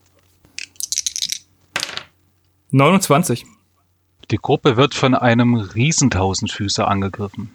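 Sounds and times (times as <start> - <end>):
dice clattering across a hard surface: 0.6 - 2.1
speech: 2.7 - 3.6, 4.3 - 7.5.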